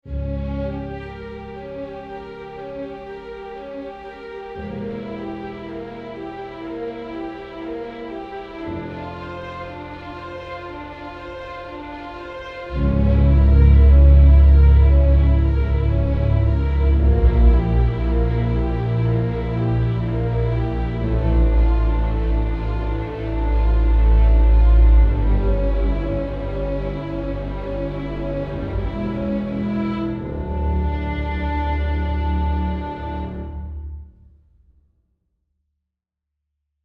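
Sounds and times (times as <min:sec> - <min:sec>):
cinematic music samples: 0:00.1 - 0:34.1.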